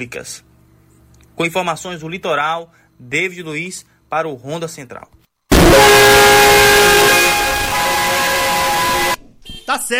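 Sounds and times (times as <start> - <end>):
speech: 0.0 - 0.5, 1.4 - 5.2, 9.7 - 9.9
truck horn blaring: 5.5 - 9.7.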